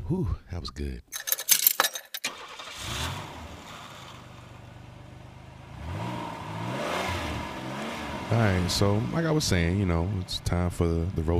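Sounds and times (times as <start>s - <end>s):
speech: 0.1s - 1.2s, 8.3s - 11.3s
keys jingling: 1.1s - 2.3s
car engine cranking, idling and revving: 2.2s - 11.3s.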